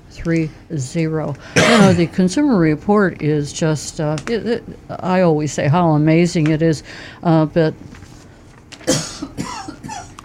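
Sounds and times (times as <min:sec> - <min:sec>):
speech: 0:00.2 - 0:08.0
person coughing with a throaty rasp: 0:01.6 - 0:02.2, 0:08.8 - 0:10.2.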